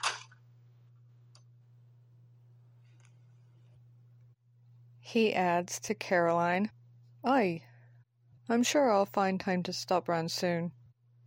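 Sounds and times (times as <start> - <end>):
cash register drawer opening with a mechanical clatter: 0.0 - 0.4
steady low electrical hum: 0.0 - 11.2
speech: 5.1 - 7.7, 8.5 - 10.8.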